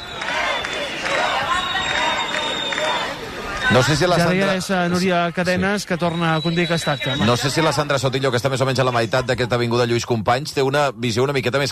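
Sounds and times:
large crowd at a rally chanting a protest slogan in unison: 0.0s - 9.3s
speech: 3.7s - 11.7s.

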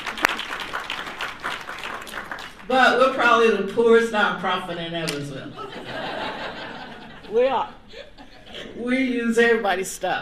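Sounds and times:
group of people clapping: 0.0s - 2.8s
speech: 2.7s - 6.0s, 7.3s - 7.8s, 8.8s - 10.2s
laughter: 5.6s - 8.7s.

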